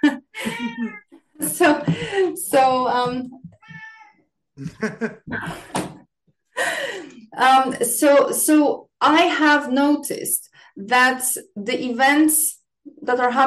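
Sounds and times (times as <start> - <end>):
cat meowing loudly with drawn-out wavering cries: 0.4 - 1.1, 3.6 - 4.2
speech: 1.6 - 3.4, 4.6 - 5.9, 7.4 - 13.4
laughter: 4.6 - 5.6.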